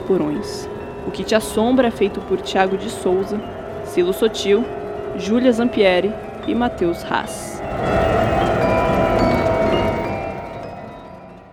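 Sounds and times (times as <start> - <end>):
faint metallic whine of tram wheels: 0.0 - 11.5
steel tram wheels rolling on rails: 0.0 - 11.5
speech: 0.1 - 8.2.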